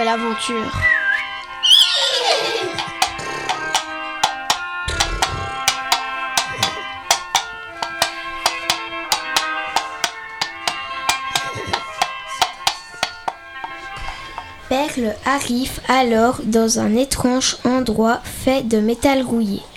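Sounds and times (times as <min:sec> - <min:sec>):
sustained musical backdrop: 0:00.0 - 0:15.0
speech: 0:00.1 - 0:01.0, 0:14.7 - 0:19.7
black and white horse whinnying: 0:01.6 - 0:03.5
horse hooves clip-clopping as it is ridden: 0:02.3 - 0:14.8.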